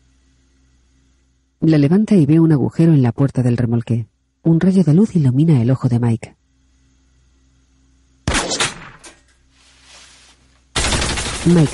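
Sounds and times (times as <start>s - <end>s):
speech: 1.6s - 6.4s, 11.4s - 11.7s
machine-gun fire at a trailer: 8.3s - 9.1s, 10.7s - 11.7s.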